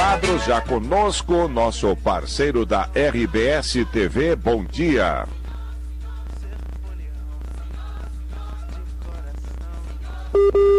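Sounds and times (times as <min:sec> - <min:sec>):
faint hum: 0:00.0 - 0:10.7
speech: 0:00.2 - 0:05.4
telephone busy signal with mid-pitched beeping tone: 0:10.4 - 0:10.7.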